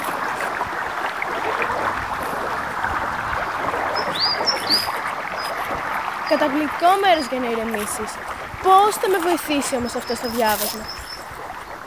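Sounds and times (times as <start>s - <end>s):
flowing river water rushing: 0.0s - 11.8s
short high bird chirps: 3.9s - 7.8s, 9.0s - 11.7s
speech: 6.3s - 11.0s.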